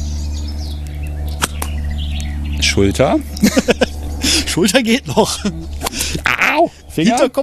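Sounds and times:
low hum: 0:00.0 - 0:07.4
whip crack from a whip swung forward by a learner: 0:01.4 - 0:01.8, 0:05.8 - 0:06.1
speech: 0:02.8 - 0:03.8, 0:04.5 - 0:07.4
laughter: 0:03.3 - 0:07.2.

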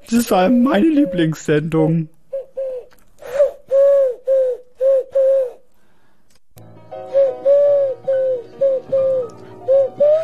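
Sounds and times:
speech: 0:00.1 - 0:02.2
person imitating pigeon cooing in a radio studio: 0:02.3 - 0:05.6, 0:07.2 - 0:10.2.

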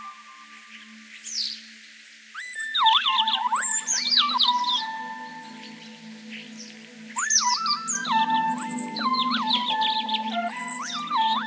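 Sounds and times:
electronic synthesizer tones replaying a bird's song: 0:02.7 - 0:11.4
low droning undertone: 0:03.1 - 0:11.4.

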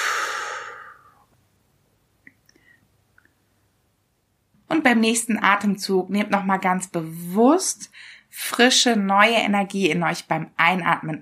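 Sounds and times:
deep breath exhale: 0:00.0 - 0:01.2
speech: 0:04.7 - 0:11.2.

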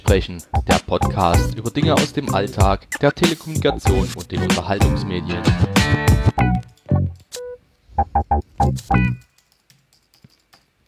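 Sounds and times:
speech: 0:00.0 - 0:06.0
typing on a computer keyboard: 0:06.4 - 0:10.8.

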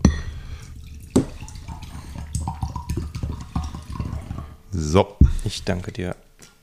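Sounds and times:
still water pouring into a glass: 0:00.2 - 0:05.5
speech: 0:04.8 - 0:06.3.

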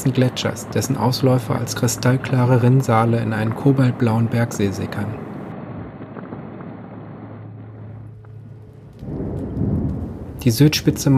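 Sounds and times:
speech: 0:00.0 - 0:05.3, 0:10.4 - 0:11.1
steady rain in a late-evening thunderstorm over the southern tip of Malta: 0:00.0 - 0:11.1
deep rolling thunder over the southern tip of Malta: 0:05.4 - 0:11.1.

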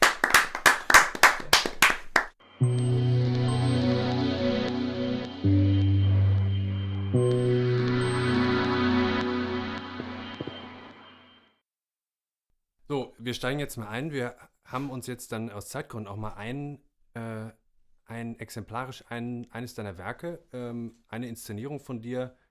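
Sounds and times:
audience applause: 0:00.0 - 0:02.4
sustained music: 0:02.4 - 0:11.6
speech: 0:13.3 - 0:22.4.

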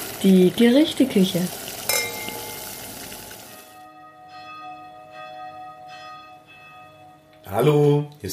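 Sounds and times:
speech: 0:00.2 - 0:01.7, 0:07.5 - 0:08.3
church bells ringing: 0:03.6 - 0:07.9.

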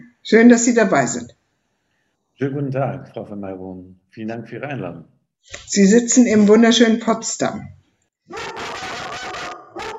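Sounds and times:
speech: 0:00.2 - 0:01.4, 0:02.4 - 0:08.6
dog barking loudly: 0:08.3 - 0:09.9.

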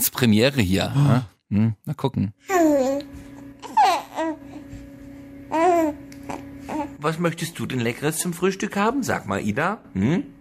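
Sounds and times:
faint steady hum: 0:00.0 - 0:10.4
speech: 0:00.1 - 0:02.8, 0:07.0 - 0:10.4
baby babbling: 0:02.5 - 0:04.6, 0:05.5 - 0:07.0.

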